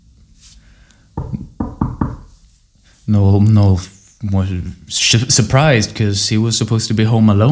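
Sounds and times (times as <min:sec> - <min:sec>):
firm knocks on a wooden door: 0:01.2 - 0:02.3
speech: 0:03.1 - 0:07.5.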